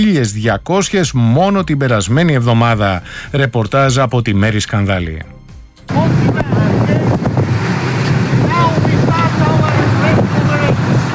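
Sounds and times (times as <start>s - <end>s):
speech: 0.0s - 5.3s
coast guard boat engine droning on open water: 5.8s - 11.1s
wind buffeting the microphone: 5.9s - 11.1s.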